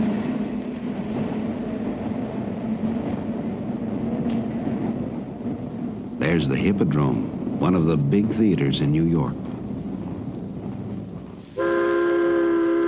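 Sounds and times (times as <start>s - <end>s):
elevated train rumbling along the tracks in New York City: 0.0s - 12.8s
speech: 6.3s - 9.5s
elevated train horn blast: 11.6s - 12.8s.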